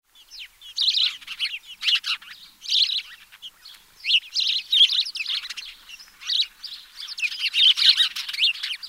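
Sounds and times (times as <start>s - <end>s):
house sparrow Passer domesticus chattering chirps: 0.1s - 8.8s.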